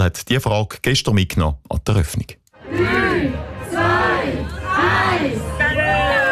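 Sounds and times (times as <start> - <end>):
speech: 0.0 - 3.4
crowd of invited guests cheering at a trade fair opening ceremony: 2.6 - 6.3.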